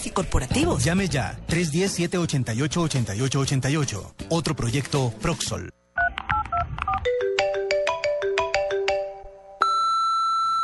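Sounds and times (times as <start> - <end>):
speech: 0.0 - 5.8
cell phone ringtone with bright electronic melody: 6.0 - 10.6.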